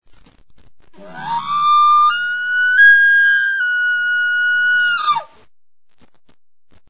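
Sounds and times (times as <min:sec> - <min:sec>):
bull elk bugling: 0:01.0 - 0:05.4.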